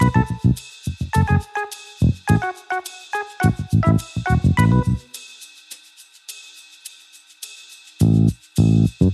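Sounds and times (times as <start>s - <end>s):
lobby music: 0.0s - 5.2s.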